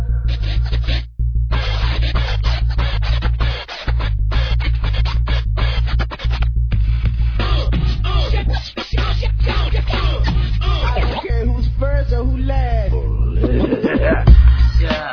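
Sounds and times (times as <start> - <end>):
steady low bass hum: 0.0 - 15.0
DJ turntable scratching: 0.0 - 15.1
laughter: 0.4 - 1.0, 1.6 - 6.4, 7.4 - 11.6, 13.3 - 15.1.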